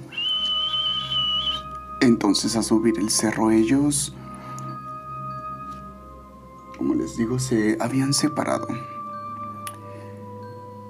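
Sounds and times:
person whistling a high-pitched note imitating a whistled call: 0:00.0 - 0:01.8
speech: 0:02.0 - 0:04.2, 0:06.8 - 0:08.9.

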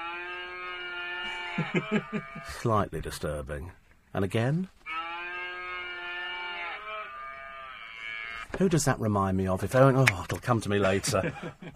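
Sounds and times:
novelty mooing greeting card playing electronic cow moo: 0:00.0 - 0:02.6, 0:04.8 - 0:08.5
speech: 0:01.2 - 0:04.8, 0:08.6 - 0:11.7
laughter: 0:01.5 - 0:02.5, 0:10.8 - 0:11.7.

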